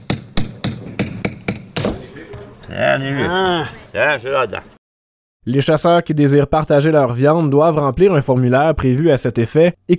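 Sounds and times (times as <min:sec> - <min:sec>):
hammer striking in sharp loud knocks: 0:00.0 - 0:02.5
speech: 0:02.7 - 0:04.7, 0:05.4 - 0:09.9.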